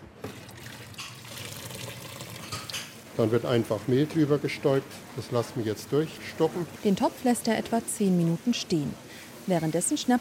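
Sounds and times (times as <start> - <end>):
water poured off pot of boiled potatoes: 0.2 - 2.9
speech: 3.2 - 10.1.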